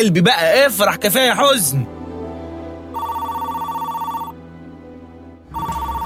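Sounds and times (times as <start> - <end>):
speech: 0.0 - 2.0
telephone ringing with a warbling electronic trill: 3.0 - 4.3, 5.6 - 6.0.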